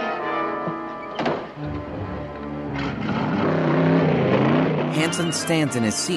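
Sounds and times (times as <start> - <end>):
small convertible car engine driving off: 0.6 - 6.1
speech: 5.0 - 6.1.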